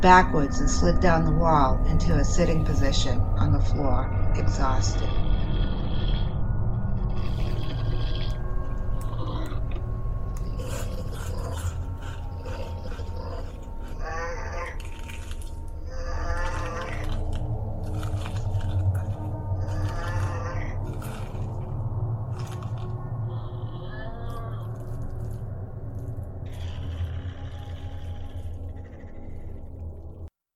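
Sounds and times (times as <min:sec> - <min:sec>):
speech: 0:00.0 - 0:05.3
low rumbling drone: 0:00.0 - 0:30.3
monster munching and chewing with wet rasping crunches: 0:07.0 - 0:30.3.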